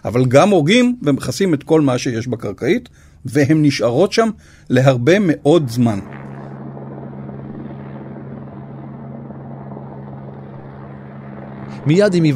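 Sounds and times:
speech: 0.0 - 6.2, 11.8 - 12.3
helicopter flying overhead: 5.6 - 12.3.

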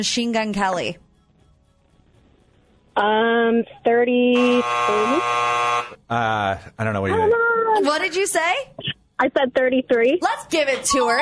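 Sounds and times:
speech: 0.0 - 1.0, 3.0 - 11.2
rasping tone: 3.0 - 6.2
loud harsh quiz buzzer: 4.2 - 6.4.

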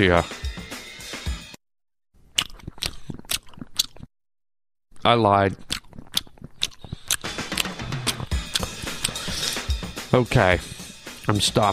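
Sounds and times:
speech: 0.0 - 0.4, 5.0 - 5.7, 10.1 - 11.7
gum chewing right against a microphone: 2.2 - 4.1, 5.0 - 9.8.

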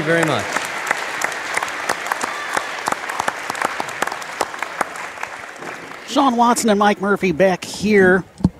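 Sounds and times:
speech: 0.0 - 0.6, 6.1 - 8.4
audience applause at a Hall of Fame induction ceremony: 0.0 - 6.6.

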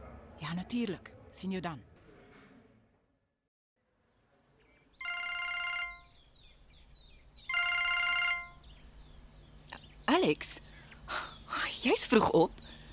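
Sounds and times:
speech: 0.4 - 1.9, 10.2 - 12.6
telephone ringing with electronic trills: 5.0 - 6.2, 7.5 - 8.7.

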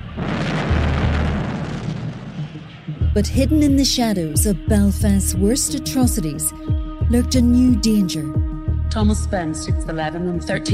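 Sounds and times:
massive explosion: 0.0 - 2.8
speech: 3.2 - 8.4, 9.0 - 10.7.

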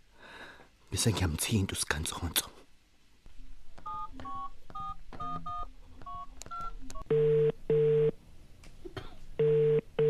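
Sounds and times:
faint noise: 0.0 - 10.0
speech: 1.0 - 2.6
DTMF keypad tones dialing a call from a phone set to a private number: 3.8 - 8.0
phone ringing tones in double-pulse pairs: 3.8 - 8.2, 9.4 - 10.0.

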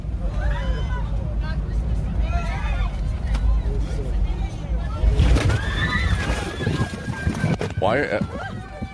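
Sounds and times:
jet cabin rumbling and rattling in severe turbulence: 0.0 - 8.9
cart flipping over and spilling hot water: 5.0 - 7.8
speech: 7.9 - 8.4.

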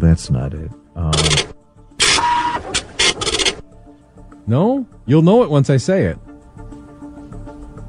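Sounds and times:
speech: 0.1 - 1.5, 4.5 - 6.2
dot matrix printer printing in harsh buzzing bursts: 1.2 - 3.6.

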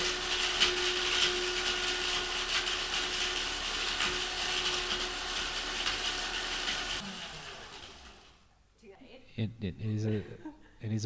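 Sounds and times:
blender grinding an avocado seed: 0.0 - 8.5
speech: 9.4 - 11.0.

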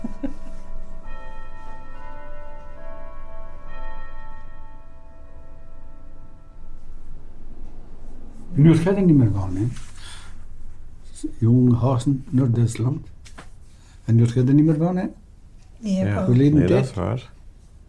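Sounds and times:
church bell striking twelve o'clock: 0.0 - 9.4
steady low rumble: 2.9 - 17.8
speech: 8.6 - 9.9, 11.4 - 13.2, 14.1 - 15.2, 15.8 - 17.4.

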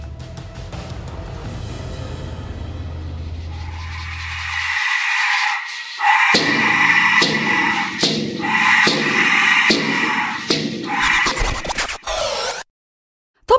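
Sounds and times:
Aztec skull-shaped death whistles blown together shrieking: 3.5 - 11.6.

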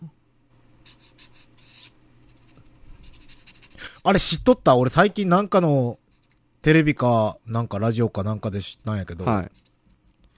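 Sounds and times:
faint low hum: 0.0 - 10.3
pen scratching across paper: 0.8 - 3.8
speech: 4.0 - 6.0, 6.6 - 9.6.

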